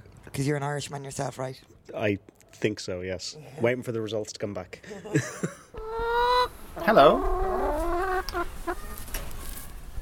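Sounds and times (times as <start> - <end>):
speech: 0.4 - 5.6, 6.8 - 7.4
laughter: 4.8 - 5.8
chickens clucking: 5.7 - 9.6
low farmyard rustle: 7.6 - 9.9.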